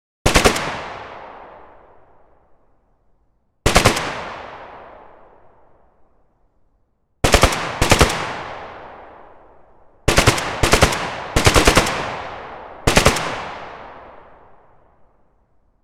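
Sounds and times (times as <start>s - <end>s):
gunshots echoing across a hillside: 0.2s - 1.9s, 3.7s - 5.2s, 7.2s - 9.4s, 10.1s - 14.5s.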